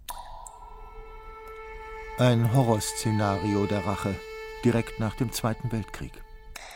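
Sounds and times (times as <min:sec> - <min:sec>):
water dripping from taps: 0:00.0 - 0:05.0
speech: 0:02.2 - 0:06.2.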